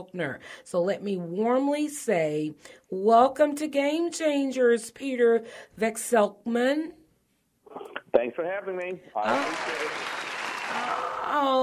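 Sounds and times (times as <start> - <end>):
speech: 0.0 - 7.0, 7.7 - 11.6
round of applause from a small group: 9.2 - 11.6.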